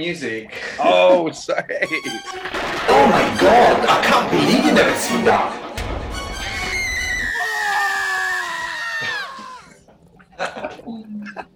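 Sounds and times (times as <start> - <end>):
speech: 0.0 - 5.7
person screaming with pitch dropping: 7.3 - 9.8.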